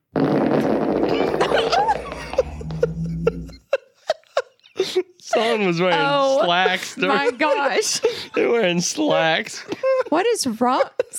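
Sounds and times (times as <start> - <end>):
long loud fart: 0.0 - 3.6
stifled laughter: 1.2 - 8.7, 9.6 - 11.1
speech: 5.5 - 11.1.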